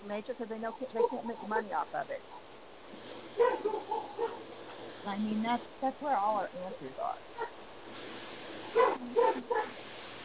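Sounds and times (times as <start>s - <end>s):
speech: 0.0s - 7.6s, 8.7s - 10.2s
low background hiss: 0.0s - 10.2s
dog barking: 0.9s - 1.6s, 3.4s - 4.5s, 7.4s - 7.6s, 8.7s - 9.8s.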